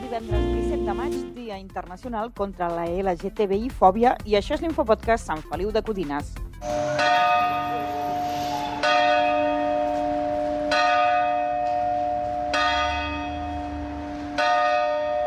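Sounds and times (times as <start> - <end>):
speech: 0.2 - 8.2
church tower bell striking the hours on civil bell tower: 6.7 - 15.2.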